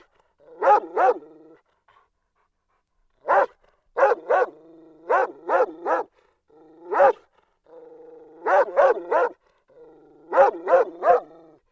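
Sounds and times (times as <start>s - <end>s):
dog barking: 0.6s - 1.3s, 3.2s - 6.1s, 6.9s - 7.3s, 8.4s - 9.4s, 10.3s - 11.3s
speech: 0.8s - 1.3s.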